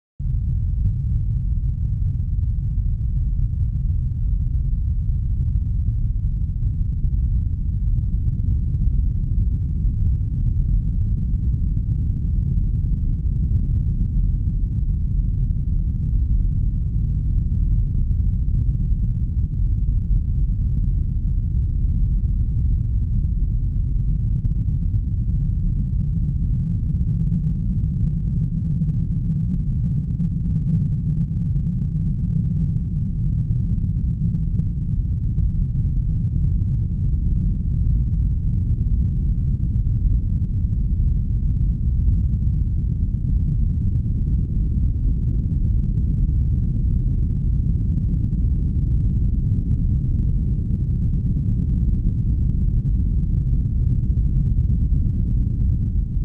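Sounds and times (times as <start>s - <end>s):
low end rumble: 0.2s - 56.2s.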